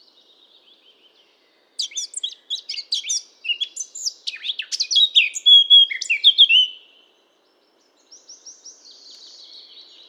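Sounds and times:
Eurasian blackcap Sylvia atricapilla singing: 0:01.8 - 0:06.8.

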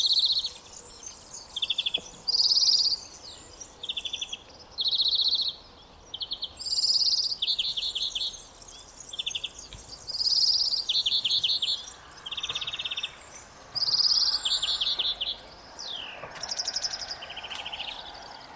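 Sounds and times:
European greenfinch Chloris chloris giving rapid twittering trills: 0:00.0 - 0:18.5.

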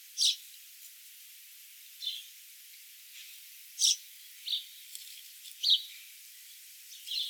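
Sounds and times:
house sparrow Passer domesticus chirps: 0:00.2 - 0:00.4, 0:03.8 - 0:04.7, 0:05.6 - 0:06.0.

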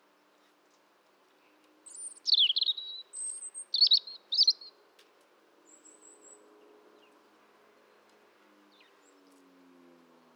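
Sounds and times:
European robin singing: 0:01.9 - 0:04.7.

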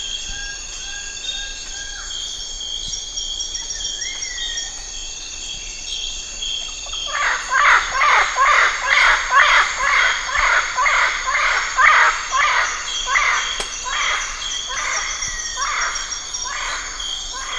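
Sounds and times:
harsh cawing bird calls: 0:07.0 - 0:17.5.

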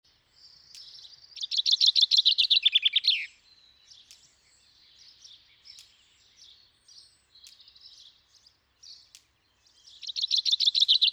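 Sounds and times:
common chaffinch song: 0:00.1 - 0:11.1.

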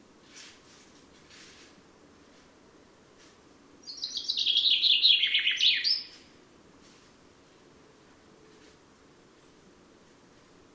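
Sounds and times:
common chaffinch Fringilla coelebs song: 0:03.8 - 0:06.4.

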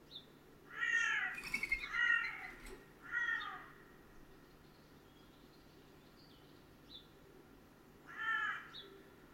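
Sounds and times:
Carrion crow Corvus corone raspy cawing: 0:00.7 - 0:03.8, 0:08.1 - 0:08.7.

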